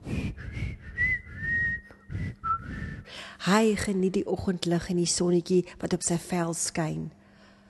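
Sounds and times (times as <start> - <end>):
person whistling a simple tune: 0.2 - 3.1
speech: 3.4 - 7.2.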